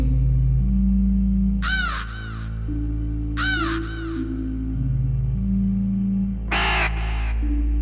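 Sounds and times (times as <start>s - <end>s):
steady low droning musical bed: 0.0s - 7.7s
raven cawing: 1.6s - 2.8s, 3.4s - 4.4s, 6.5s - 7.6s.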